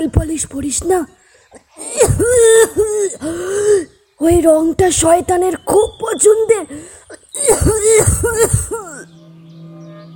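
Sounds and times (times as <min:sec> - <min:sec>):
speech: 0:00.0 - 0:09.1
harsh hoarse coughing fit: 0:01.5 - 0:03.3, 0:06.8 - 0:09.1.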